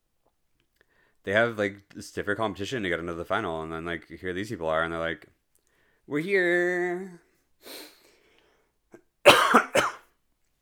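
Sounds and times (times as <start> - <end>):
faint breath: 0.8 - 1.2, 5.6 - 6.1, 7.6 - 8.8
speech: 1.2 - 5.4, 6.1 - 7.9
person with a dry throat coughing harshly: 9.3 - 10.1.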